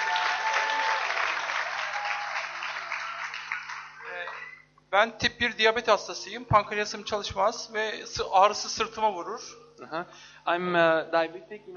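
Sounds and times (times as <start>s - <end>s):
large crowd applauding: 0.0s - 4.6s
speech: 4.9s - 11.7s.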